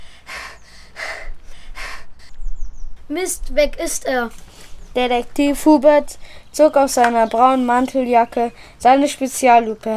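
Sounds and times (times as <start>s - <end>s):
heavy panting from two people out of breath after a chase on foot: 0.0s - 2.4s
speech: 3.1s - 9.9s.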